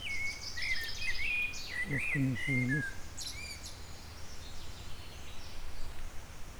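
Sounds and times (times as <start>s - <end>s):
Eurasian blackbird Turdus merula singing: 0.1s - 3.5s
speech: 2.1s - 3.0s.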